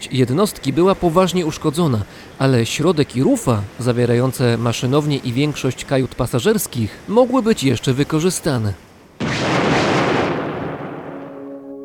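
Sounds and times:
speech: 0:00.0 - 0:08.9
explosive charges splitting a stranded ship: 0:09.2 - 0:11.5.

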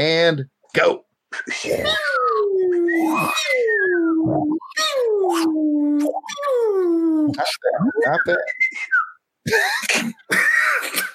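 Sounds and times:
speech: 0:00.0 - 0:02.2, 0:03.0 - 0:08.9, 0:09.5 - 0:11.1
voices imitating robot whistles with falling warbling swoops: 0:01.3 - 0:09.2.

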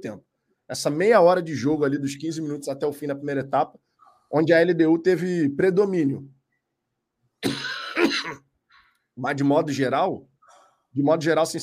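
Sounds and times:
speech: 0:00.0 - 0:06.4, 0:07.4 - 0:08.4, 0:09.2 - 0:10.3, 0:10.9 - 0:11.6
person clearing throat in a rough gravelly burst: 0:07.4 - 0:08.5
short cough-like push: 0:07.4 - 0:08.5
faint trailing breath: 0:10.4 - 0:11.0.

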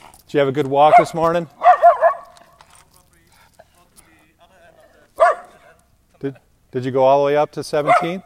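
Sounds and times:
speech: 0:00.3 - 0:01.6, 0:06.2 - 0:08.2
dog barking at a neighbor: 0:00.8 - 0:02.6, 0:05.2 - 0:05.7, 0:07.8 - 0:08.2
faint voices murmuring: 0:02.5 - 0:06.6.

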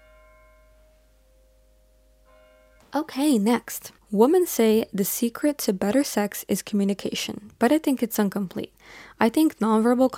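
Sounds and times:
faint bell ringing: 0:00.0 - 0:03.0
speech: 0:03.0 - 0:10.1.

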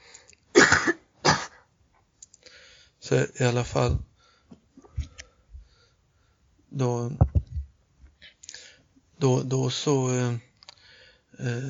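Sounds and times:
person coughing harshly: 0:00.6 - 0:01.6
speech: 0:03.1 - 0:04.1, 0:06.8 - 0:07.4, 0:09.2 - 0:10.5, 0:11.4 - 0:11.6.

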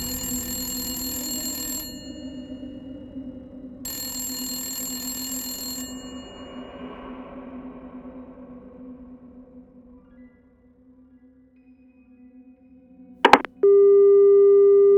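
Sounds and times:
telephone ringing: 0:00.0 - 0:02.6, 0:03.9 - 0:06.6, 0:13.3 - 0:14.9.

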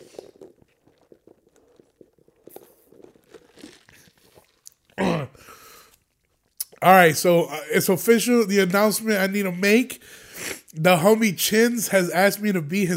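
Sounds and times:
ice crunching in iced coffee: 0:00.0 - 0:04.8
sipping iced coffee: 0:00.0 - 0:06.9
speech: 0:06.8 - 0:12.9.

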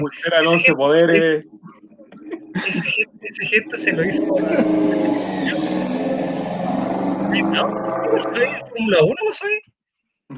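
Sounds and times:
speech: 0:00.0 - 0:01.6, 0:02.6 - 0:06.3, 0:07.3 - 0:09.7
laughter: 0:02.1 - 0:06.0
motorcycle engine revving: 0:04.1 - 0:08.9.

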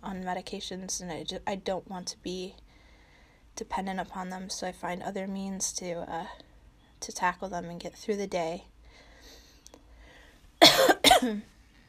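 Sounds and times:
speech: 0:00.1 - 0:02.6, 0:03.6 - 0:06.4, 0:07.0 - 0:09.4, 0:11.2 - 0:11.5
person coughing harshly: 0:10.6 - 0:11.5.

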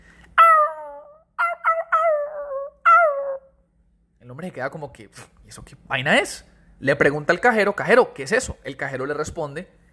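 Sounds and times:
dog whining and yelping: 0:00.4 - 0:03.6
speech: 0:04.4 - 0:09.8.

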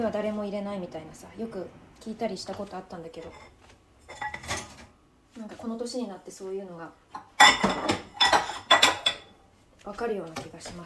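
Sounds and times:
speech: 0:00.0 - 0:04.3, 0:05.4 - 0:08.0, 0:09.8 - 0:10.8
dishes and cutlery clinking while handled: 0:03.2 - 0:04.9, 0:07.2 - 0:09.3.

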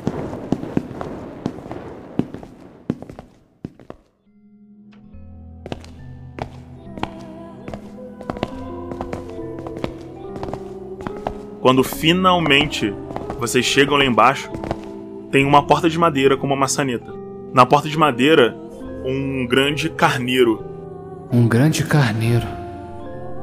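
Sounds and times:
footsteps descending stairs echoing in a hall: 0:00.0 - 0:04.1, 0:05.7 - 0:15.0
speech: 0:11.7 - 0:14.6, 0:15.3 - 0:20.7, 0:21.3 - 0:22.6.

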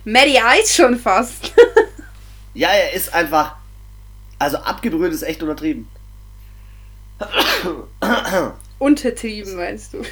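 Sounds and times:
speech: 0:00.0 - 0:01.7, 0:02.6 - 0:03.6, 0:04.4 - 0:06.0, 0:07.2 - 0:10.1
laughter: 0:01.4 - 0:02.1, 0:10.0 - 0:10.1
loud sneeze: 0:07.2 - 0:08.6.

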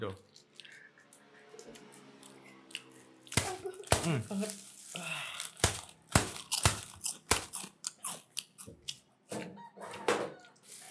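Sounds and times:
speech: 0:00.0 - 0:00.3, 0:04.0 - 0:05.2
crunchy chewing of crisp chips keripik: 0:00.1 - 0:09.2.

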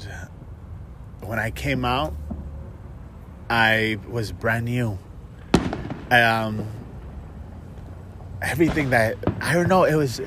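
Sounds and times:
speech: 0:01.2 - 0:02.2, 0:03.5 - 0:05.1, 0:06.1 - 0:06.8, 0:08.4 - 0:10.2
single sharp gunshot outside: 0:05.5 - 0:06.8, 0:08.6 - 0:09.8.

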